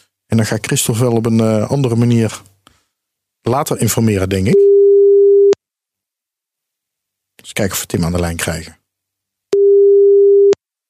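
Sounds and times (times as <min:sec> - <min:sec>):
speech: 0:00.3 - 0:02.5, 0:03.4 - 0:04.6, 0:07.4 - 0:08.8
telephone ringback tone while calling: 0:09.6 - 0:10.6.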